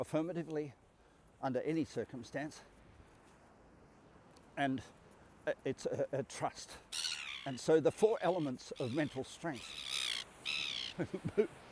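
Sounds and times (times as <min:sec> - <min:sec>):
speech: 0:00.0 - 0:02.7, 0:04.6 - 0:09.9, 0:11.0 - 0:11.6
gull squawking: 0:07.0 - 0:07.6, 0:08.4 - 0:11.0.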